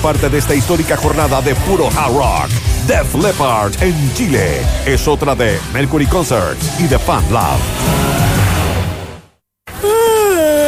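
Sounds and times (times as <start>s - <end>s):
speech: 0.0s - 8.2s
person yawning loudly: 9.8s - 10.6s.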